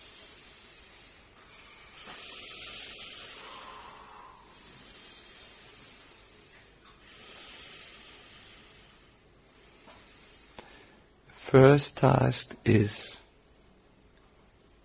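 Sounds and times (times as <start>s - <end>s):
slow deep breaths in and out during a guided breathing exercise: 0.0s - 11.6s
speech: 11.5s - 13.2s.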